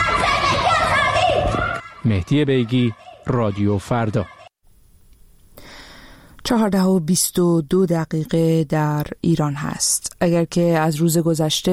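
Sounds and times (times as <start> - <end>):
crowd of young protesters chanting a slogan in unison: 0.0 - 4.5
speech: 2.0 - 4.4, 6.5 - 11.7.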